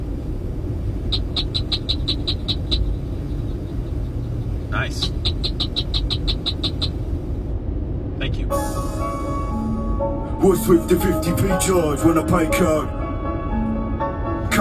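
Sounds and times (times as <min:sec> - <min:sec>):
steady low rumble: 0:00.0 - 0:14.5
cricket frog calling: 0:01.0 - 0:07.2
speech: 0:01.1 - 0:01.5, 0:04.8 - 0:06.0, 0:10.4 - 0:13.0.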